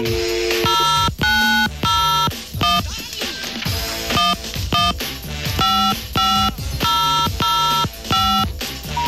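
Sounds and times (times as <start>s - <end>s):
telephone engaged signal: 0.0s - 2.8s, 4.2s - 5.0s, 5.6s - 9.0s
telephone dialing tones: 0.5s - 2.9s, 4.1s - 9.0s.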